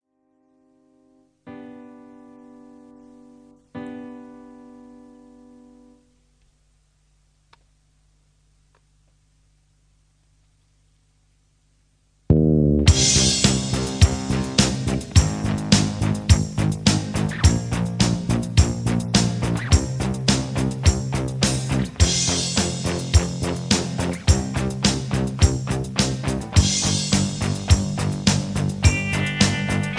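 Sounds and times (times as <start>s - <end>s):
karaoke backing track without vocals: 12.9s - 29.9s.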